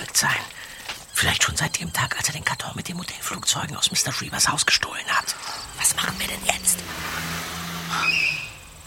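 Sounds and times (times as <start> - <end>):
speech: 0.2 - 0.6, 1.2 - 8.5
low hum: 0.6 - 8.8
car driving away: 4.4 - 8.8.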